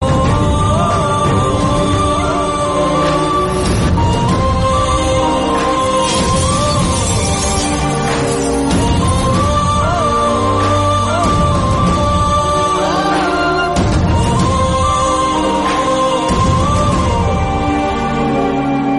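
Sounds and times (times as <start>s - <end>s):
sad climax background music: 0.0s - 18.9s.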